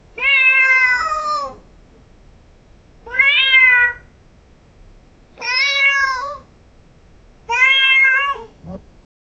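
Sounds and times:
cat meowing: 0:00.2 - 0:01.6, 0:03.1 - 0:04.1, 0:05.4 - 0:06.4, 0:07.5 - 0:08.8.

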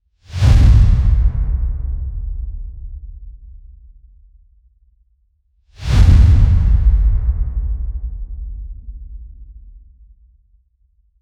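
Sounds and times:
fast low air whoosh: 0:00.3 - 0:03.3, 0:05.8 - 0:10.1.

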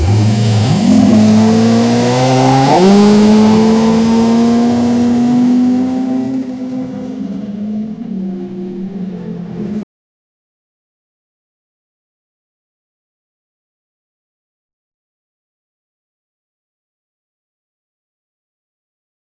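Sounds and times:
formula race car accelerating at low speed: 0:00.0 - 0:09.8.

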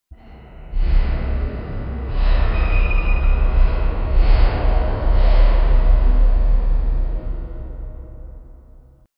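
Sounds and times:
dark corridor ambience: 0:00.1 - 0:09.1
metallic scraping: 0:01.4 - 0:08.6.

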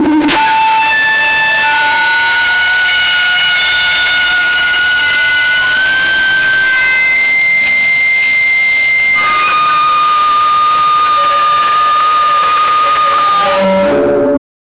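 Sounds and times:
guttural death scream sound effect: 0:00.4 - 0:14.2.

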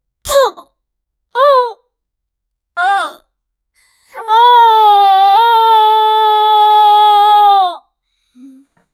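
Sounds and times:
teenager crying out in pain from an injury: 0:04.2 - 0:07.8.

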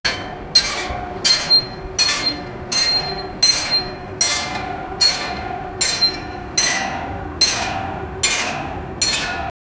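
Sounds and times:
iron construction noise: 0:00.1 - 0:09.5.

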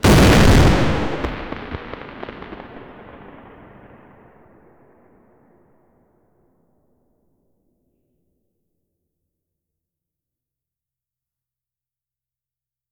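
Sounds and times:
confetti explosion: 0:00.0 - 0:03.1.

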